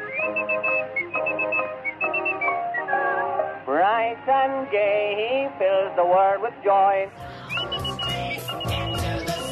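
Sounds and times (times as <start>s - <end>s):
boy whistling a bright lilting tune: 0.0s - 3.4s, 7.4s - 9.4s
speech: 4.1s - 7.3s.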